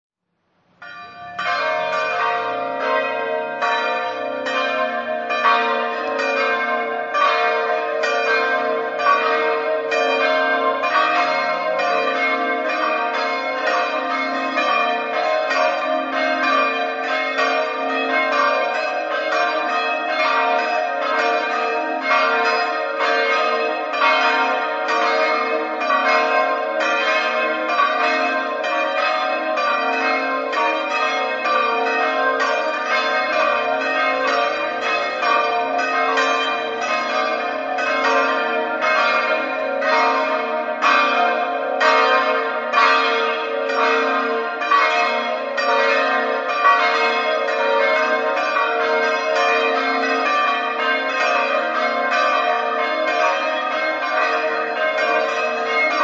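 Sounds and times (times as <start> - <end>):
bells ringing: 0.8 - 56.0.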